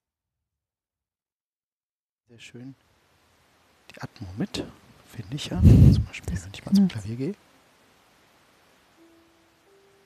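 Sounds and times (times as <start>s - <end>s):
speech: 2.3s - 3.0s, 4.0s - 7.4s
background hiss from a cheap headset: 2.3s - 10.0s.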